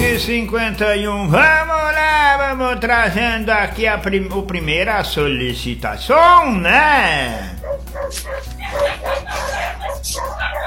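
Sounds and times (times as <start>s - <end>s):
speech: 0.2s - 10.4s
several dogs barking: 5.9s - 10.6s.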